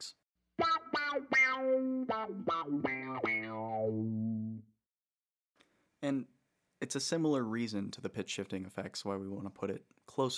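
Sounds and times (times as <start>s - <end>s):
electric guitar through an envelope filter pedal: 0.6s - 4.7s
speech: 1.6s - 4.7s, 6.0s - 10.3s.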